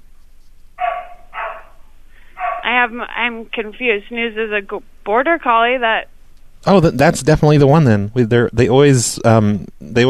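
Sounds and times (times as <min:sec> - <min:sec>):
low hum: 0:00.0 - 0:10.0
loud sharp dog barks in a dog grooming salon: 0:00.8 - 0:01.8, 0:02.4 - 0:02.7
speech: 0:02.8 - 0:10.0.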